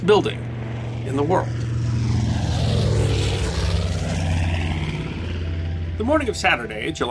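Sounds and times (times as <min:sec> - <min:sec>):
speech: 0:00.0 - 0:01.7, 0:06.0 - 0:07.0
rushing air noise: 0:00.0 - 0:06.3
United States Army Air Force B-25 Mitchell piston-engine propeller bomber passing overhead: 0:00.0 - 0:07.0.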